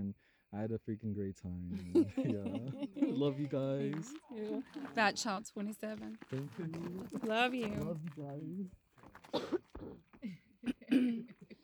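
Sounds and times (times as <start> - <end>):
speech: 0.5 - 11.4
laughter: 1.7 - 5.4
throat clearing: 9.2 - 11.6
person coughing: 9.3 - 11.6.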